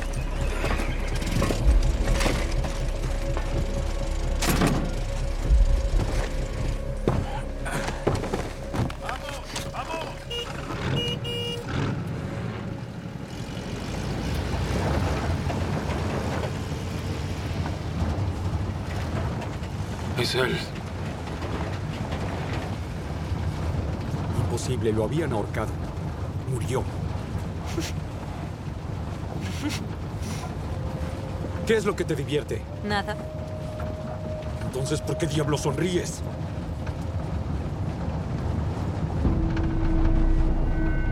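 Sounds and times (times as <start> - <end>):
boat engines starting up and rumbling: 0.0 - 41.1
speech: 20.3 - 20.8, 24.7 - 25.9, 26.6 - 27.0, 27.8 - 28.0, 31.7 - 33.2, 34.8 - 36.5.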